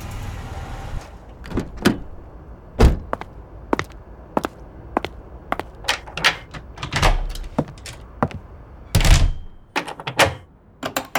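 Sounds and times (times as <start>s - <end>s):
lock being worked with sharp clicks and clunks: 1.3s - 11.1s
door thudding shut: 1.4s - 4.5s, 5.5s - 11.1s.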